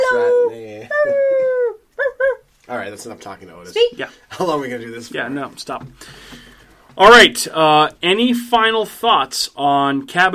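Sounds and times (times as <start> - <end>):
dog howling: 0.0 - 2.3
speech: 2.7 - 10.3.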